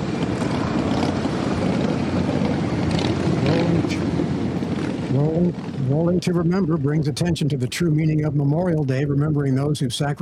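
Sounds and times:
motorcycles rumbling past: 0.0s - 6.6s
speech: 5.2s - 10.2s.

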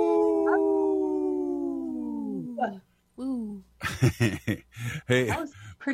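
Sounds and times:
people imitating wolf howls in three-part harmony: 0.0s - 2.7s
laughter: 3.8s - 5.6s
speech: 3.9s - 5.9s.

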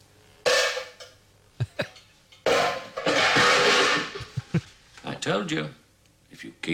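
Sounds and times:
cooking pots being banged: 0.5s - 1.2s, 1.9s - 4.4s
speech: 5.3s - 5.8s, 6.4s - 6.7s.

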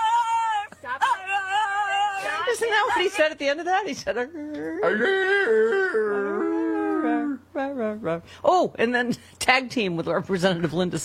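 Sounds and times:
person doing a dog howl impression: 0.0s - 2.5s, 4.4s - 7.5s
speech: 2.6s - 6.2s, 7.6s - 11.0s.

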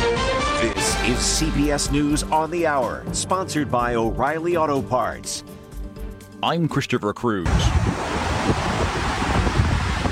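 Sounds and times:
speech: 0.6s - 5.6s, 6.4s - 8.0s
floodwaters roaring down the Los Angeles River after heavy rain: 7.5s - 10.1s.

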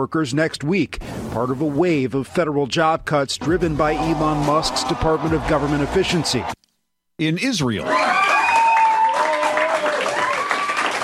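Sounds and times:
speech: 0.0s - 6.6s, 7.2s - 8.0s
crowd cheering: 3.5s - 6.6s, 7.8s - 11.0s
large crowd clapping densely: 4.0s - 6.5s, 7.9s - 11.0s.

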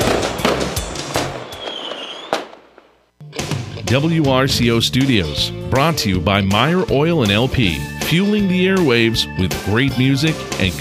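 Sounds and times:
firework whistling streak: 0.0s - 3.0s
fireworks exploding in a rapid barrage of booms and crackles: 0.0s - 3.7s
speech: 3.9s - 10.7s.

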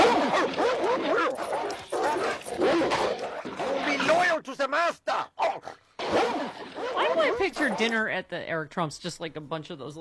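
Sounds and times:
several dogs yipping, whining and barking excitedly: 0.0s - 4.3s, 5.3s - 8.0s
speech: 7.6s - 9.9s.

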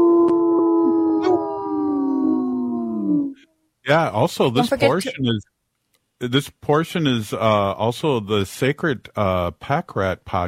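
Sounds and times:
wolves howling in chorus: 0.0s - 3.4s
speech: 3.9s - 5.5s, 6.2s - 10.4s.

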